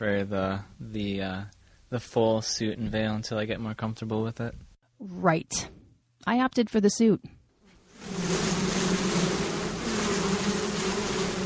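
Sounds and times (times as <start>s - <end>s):
speech: 0.0s - 7.4s
many honeybees swarming around an opened hive: 7.8s - 11.4s.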